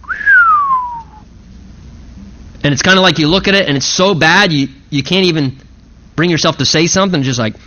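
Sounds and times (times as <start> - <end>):
human voice whistling in astonishment imitating a hiss: 0.0 - 1.2
speech: 2.6 - 7.6.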